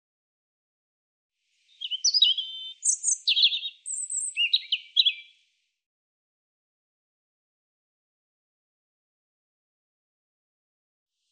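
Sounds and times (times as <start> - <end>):
European robin song: 1.6 - 5.4.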